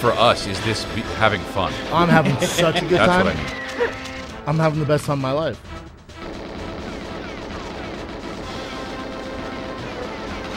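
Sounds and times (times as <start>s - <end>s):
speech: 0.0s - 5.7s
laughter: 0.3s - 4.1s
video game gunfire: 6.2s - 10.5s.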